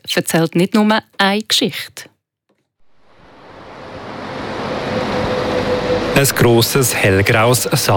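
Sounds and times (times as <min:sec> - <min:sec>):
speech: 0:00.1 - 0:02.1, 0:06.2 - 0:07.9
road traffic rushing past: 0:02.8 - 0:07.9.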